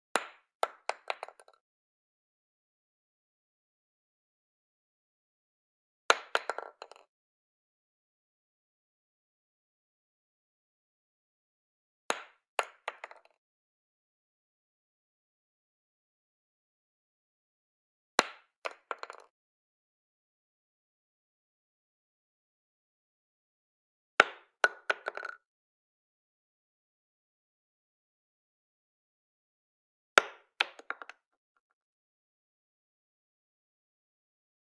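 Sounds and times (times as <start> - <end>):
20 gauge shotgun shell dropping on wood: 0.2 - 1.6, 6.3 - 7.0, 12.8 - 13.4, 18.7 - 19.3, 24.2 - 25.4, 30.2 - 31.2.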